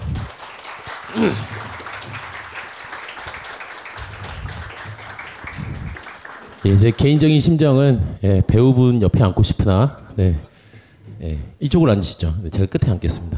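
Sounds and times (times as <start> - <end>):
audience applause welcoming a guest: 0.0 - 7.5
speech: 1.1 - 1.6, 6.6 - 10.5, 11.2 - 13.3.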